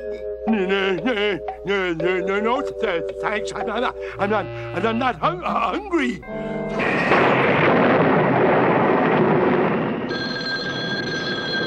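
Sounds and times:
speech: 0.0s - 7.3s
rolling thunder in a thunderstorm: 6.8s - 11.0s
steady ringing telephone tone: 10.1s - 11.6s.

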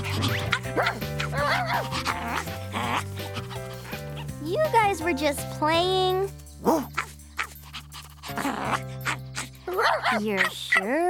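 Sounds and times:
dog barking in short sharp barks: 0.2s - 3.4s, 6.6s - 7.6s, 8.4s - 11.0s
speech: 0.8s - 2.0s, 5.0s - 6.9s, 9.8s - 11.0s.

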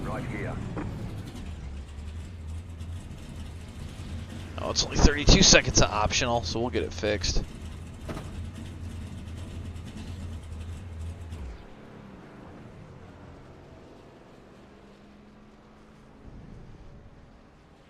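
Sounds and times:
faint rattles: 0.0s - 11.9s
truck engine idling: 0.0s - 16.3s
speech: 4.6s - 7.6s.

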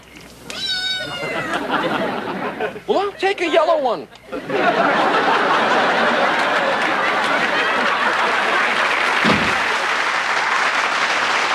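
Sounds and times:
cat meowing: 0.5s - 1.6s
laughter: 1.0s - 3.6s, 4.3s - 10.9s
speech: 2.8s - 5.9s.

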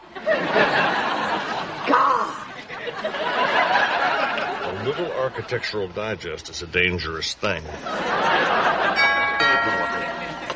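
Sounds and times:
laughter: 0.0s - 6.0s, 7.7s - 10.5s
murmur of people talking: 0.0s - 10.5s
speech: 5.0s - 10.2s
doorbell chime: 8.8s - 10.5s.

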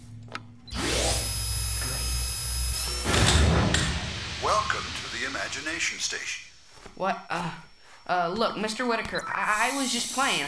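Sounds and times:
motorized door closing with mechanical whine and electric hum: 0.6s - 5.8s
speech: 5.3s - 10.4s.

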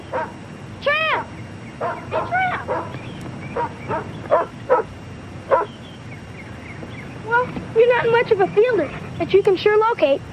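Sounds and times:
dog barking in short sharp bursts: 0.0s - 0.4s, 1.8s - 3.0s, 3.6s - 4.9s, 5.5s - 5.7s
low hum: 0.0s - 10.3s
speech: 8.2s - 10.3s.

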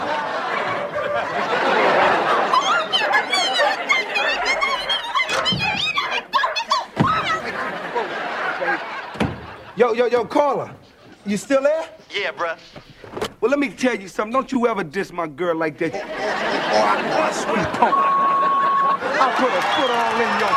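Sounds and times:
laughter: 0.0s - 11.4s, 15.8s - 20.5s
dogs barking: 2.9s - 7.4s
speech: 9.9s - 12.8s, 13.4s - 18.1s, 19.2s - 20.5s.

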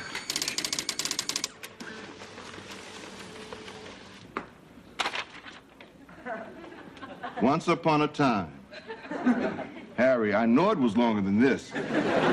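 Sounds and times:
clacks of paper advancing in a computer printer: 0.0s - 4.2s
computer printer whirring: 0.0s - 5.5s
laughter: 6.0s - 7.7s, 8.7s - 10.0s, 11.7s - 12.3s
speech: 7.4s - 8.6s, 10.1s - 12.3s.

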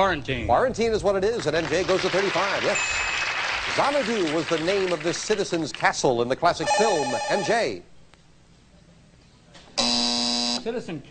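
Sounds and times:
speech: 0.0s - 7.9s, 10.6s - 11.0s
loud harsh game show buzzer during a trivia quiz round: 6.6s - 7.8s, 9.8s - 10.6s.

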